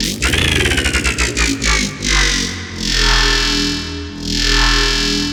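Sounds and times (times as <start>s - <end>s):
death spiral transition effect: 0.0s - 5.2s.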